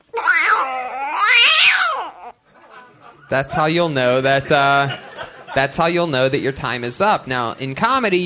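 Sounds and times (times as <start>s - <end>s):
cat meowing: 0.0s - 2.4s
laughter: 2.5s - 6.8s
speech: 3.3s - 8.2s.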